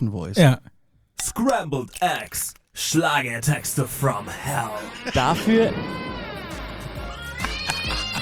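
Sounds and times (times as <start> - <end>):
speech: 0.0 - 6.6
laughter: 3.5 - 8.1
drawn-out wavering cat meows in a radio jingle: 7.0 - 8.1.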